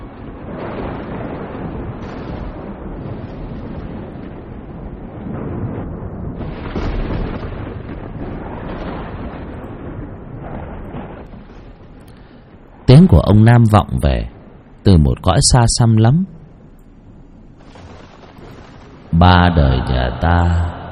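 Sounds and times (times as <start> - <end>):
loud continuous rumbling thunder without rain: 0.0 - 14.9, 16.3 - 20.9
speech: 13.0 - 16.4, 19.2 - 20.7.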